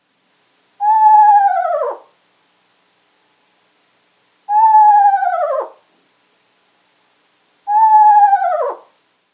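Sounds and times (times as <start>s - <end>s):
Eastern Screech-Owl trilling: 0.8s - 2.1s, 4.5s - 5.8s, 7.7s - 8.9s.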